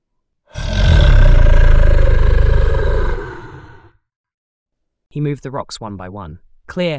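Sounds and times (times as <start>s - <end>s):
creature roaring: 0.5s - 4.0s
speech: 5.2s - 6.9s.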